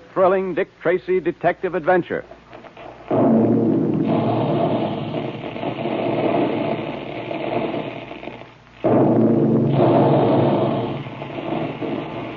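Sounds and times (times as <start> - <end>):
speech: 0.2 - 2.4
big cereal-puffing guns shooting puffed wheat and puffed rice: 2.9 - 12.3.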